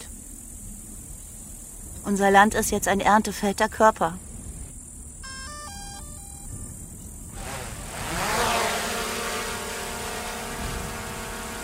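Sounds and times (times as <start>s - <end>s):
speech: 2.0s - 4.3s
drone propellers buzzing in flight: 5.2s - 11.6s.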